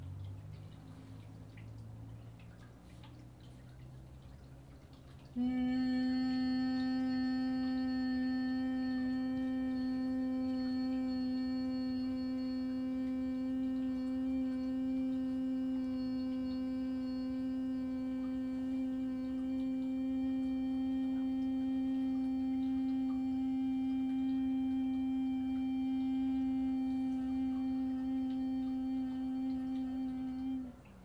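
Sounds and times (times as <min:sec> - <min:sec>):
person humming during breathing exercise: 0:05.4 - 0:31.0.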